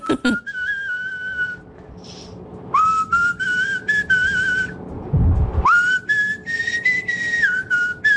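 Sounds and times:
person whistling a melody: 0:00.0 - 0:01.7, 0:02.7 - 0:04.8, 0:05.6 - 0:08.1
short low rumble: 0:04.4 - 0:06.0.

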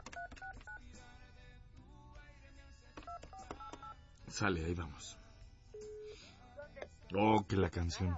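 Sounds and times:
telephone keypad tones dialing a number: 0:00.0 - 0:00.8, 0:03.0 - 0:04.0
speech: 0:04.3 - 0:05.2, 0:07.1 - 0:08.1.

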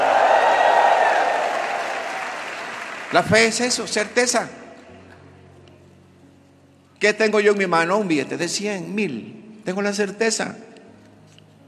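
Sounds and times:
audience shouting a cry of victory: 0:00.0 - 0:02.3
audience clapping over their heads: 0:00.0 - 0:04.2
speech: 0:03.1 - 0:04.6, 0:07.0 - 0:10.7.

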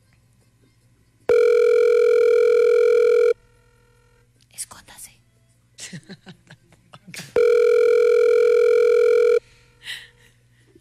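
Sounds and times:
telephone dialling tone: 0:01.3 - 0:03.4, 0:07.4 - 0:09.4.

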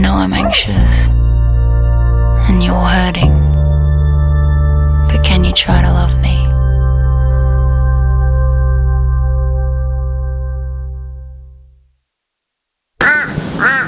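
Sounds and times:
low sustained droning tone: 0:00.0 - 0:11.9
speech: 0:00.2 - 0:01.3, 0:05.6 - 0:06.5
crow giving loud harsh caw: 0:13.0 - 0:13.8.

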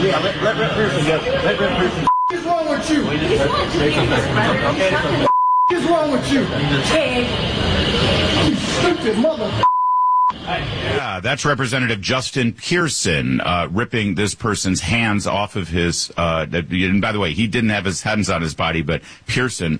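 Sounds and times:
speech: 0:00.1 - 0:02.1, 0:02.9 - 0:05.3, 0:05.9 - 0:09.7, 0:10.5 - 0:19.7
censorship bleeps over speech: 0:02.1 - 0:02.5, 0:05.2 - 0:05.9, 0:09.6 - 0:10.4.

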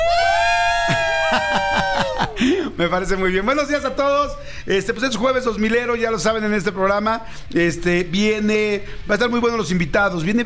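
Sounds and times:
group of five people shouting a team cheer: 0:00.0 - 0:02.4
laughter: 0:00.8 - 0:02.9
speech: 0:02.8 - 0:10.4.

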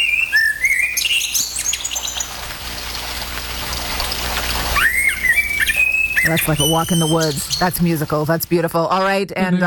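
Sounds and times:
common blackbird fluting birdsong: 0:00.0 - 0:02.4, 0:04.7 - 0:08.1
steady hiss of rain: 0:00.9 - 0:08.7
speech: 0:06.3 - 0:09.6.

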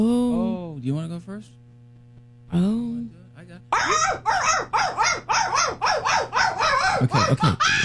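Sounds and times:
speech: 0:00.0 - 0:01.6, 0:02.5 - 0:06.4, 0:07.0 - 0:07.8
African painted dogs high-pitched chirping calls: 0:03.7 - 0:07.1
laughter: 0:06.8 - 0:07.8.

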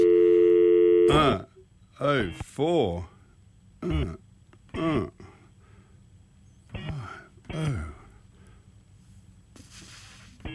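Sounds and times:
steady electronic telephone tone while dialing out: 0:00.0 - 0:01.4
speech: 0:01.1 - 0:03.1, 0:03.8 - 0:04.2, 0:04.8 - 0:05.2.

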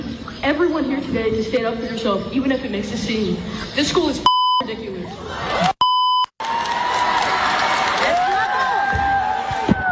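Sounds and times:
speech: 0:00.1 - 0:05.7
brief electronic bleep: 0:04.3 - 0:04.6, 0:05.8 - 0:06.3
loud crowd of adults cheering and whooping: 0:06.4 - 0:09.9.

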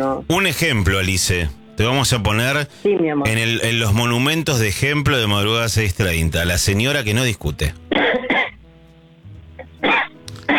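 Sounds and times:
speech: 0:00.2 - 0:07.8
woman coughing and choking: 0:07.9 - 0:08.6, 0:09.8 - 0:10.5.

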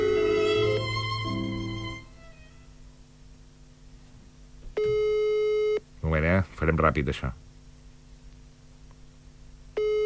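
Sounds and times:
telephone ringing tone on an unanswered call: 0:00.0 - 0:00.8, 0:04.8 - 0:05.8, 0:09.8 - 0:10.0
speech: 0:06.1 - 0:07.5.

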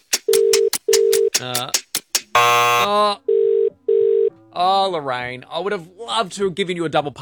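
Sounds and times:
burst of clicks on a phone line: 0:00.0 - 0:02.7
speech: 0:01.4 - 0:01.8, 0:02.4 - 0:03.2, 0:04.6 - 0:07.1
phone line ringing tones through the earhole: 0:02.4 - 0:04.4.

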